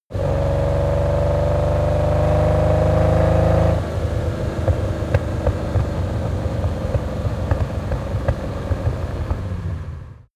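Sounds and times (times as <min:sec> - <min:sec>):
Lamborghini Countach car accelerating: 0:00.1 - 0:10.3
clatter: 0:04.5 - 0:10.2.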